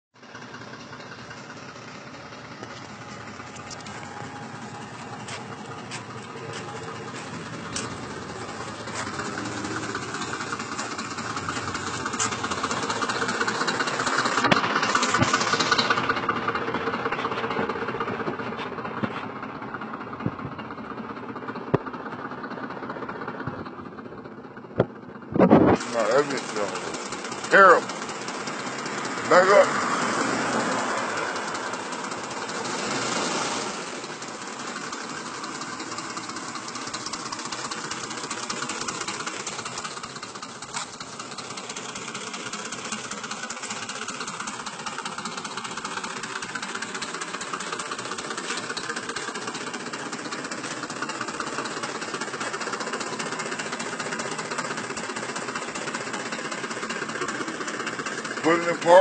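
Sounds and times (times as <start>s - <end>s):
5.4 litre engine running with oil pressure problems: 0.2s - 58.9s.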